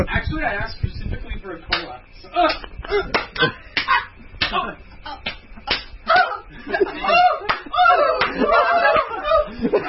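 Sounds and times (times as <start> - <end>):
speech: 0.0 - 5.3
loud sharp slaps of a spanking: 1.7 - 6.3, 7.4 - 8.4
laughter and snickering voices: 2.4 - 4.2, 5.6 - 9.8.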